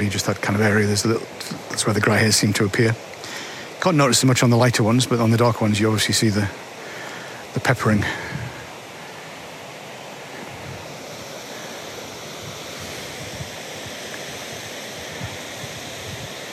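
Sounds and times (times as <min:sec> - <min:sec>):
water running off a lake into a tunnel: 0:00.0 - 0:16.5
speech: 0:00.1 - 0:03.1, 0:03.8 - 0:06.7, 0:07.6 - 0:08.3
wind noise: 0:07.9 - 0:08.8, 0:10.3 - 0:16.5.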